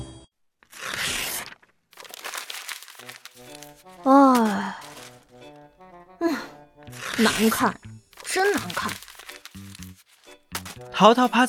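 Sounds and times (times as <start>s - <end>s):
sheet of paper torn off: 0.6s - 5.4s, 6.9s - 11.4s
person making wordless vocal sighs and groans: 3.9s - 5.3s, 6.1s - 7.6s
speech: 7.2s - 9.0s, 11.0s - 11.4s.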